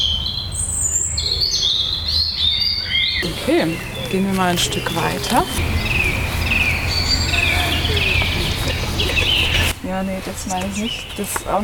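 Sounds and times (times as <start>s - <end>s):
European robin singing: 0.0s - 11.6s
speech: 3.2s - 5.9s, 9.9s - 11.6s
laughter: 3.2s - 9.8s
steady low rumble of rushing water: 5.5s - 9.8s.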